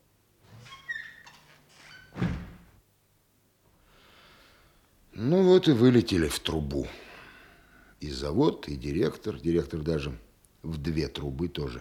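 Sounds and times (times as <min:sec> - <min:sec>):
squeaky door hinges creaking: 0:00.5 - 0:02.8
door swinging shut with a solid thunk: 0:02.1 - 0:02.7
speech: 0:05.6 - 0:07.0, 0:08.0 - 0:11.7.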